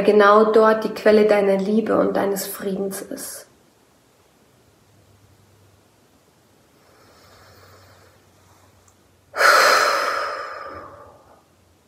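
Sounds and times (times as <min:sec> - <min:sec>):
speech: 0:00.0 - 0:03.5
deep breath in and out during a guided meditation: 0:06.8 - 0:08.4, 0:09.3 - 0:11.5.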